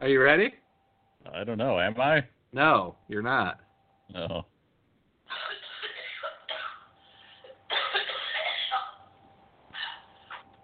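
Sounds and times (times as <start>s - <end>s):
speech: 0.0s - 0.6s, 1.2s - 4.5s
harsh raspy coughing fit: 5.3s - 6.9s, 7.7s - 9.0s.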